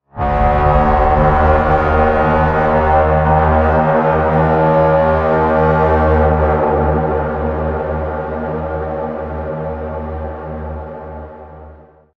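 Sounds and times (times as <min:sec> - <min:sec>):
raid horn: 0:00.0 - 0:09.2.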